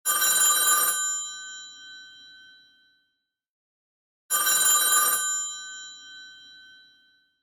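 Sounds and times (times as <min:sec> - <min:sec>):
telephone bell: 0:00.1 - 0:02.9, 0:04.3 - 0:07.4.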